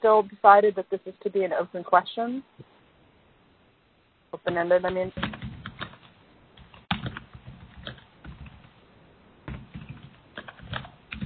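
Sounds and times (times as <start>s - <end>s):
speech: 0.0s - 2.7s, 4.3s - 5.4s
someone typing on a computer keyboard: 4.5s - 8.7s, 9.5s - 11.2s.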